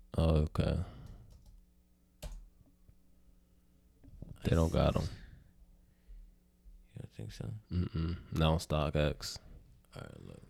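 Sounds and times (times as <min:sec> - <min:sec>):
speech: 0:00.2 - 0:01.0, 0:04.4 - 0:05.2, 0:07.2 - 0:10.4
typing on a computer keyboard: 0:01.1 - 0:01.6.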